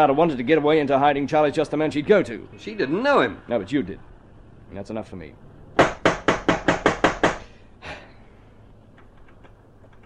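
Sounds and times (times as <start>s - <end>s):
speech: 0.0s - 4.1s, 4.7s - 5.5s
forceful banging on a door: 5.8s - 7.4s.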